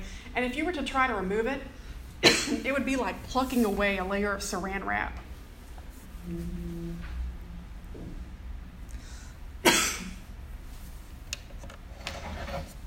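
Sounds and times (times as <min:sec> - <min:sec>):
faint low hum: 0:00.0 - 0:12.8
speech: 0:00.4 - 0:05.3, 0:06.2 - 0:06.8
person coughing from a tickle in throat: 0:02.2 - 0:02.6, 0:09.6 - 0:10.2.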